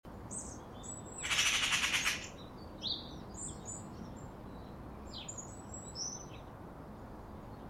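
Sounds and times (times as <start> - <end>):
small birds chirping and twittering: 0.3 - 6.6
Eurasian magpie harsh rattling chatter: 0.4 - 2.4.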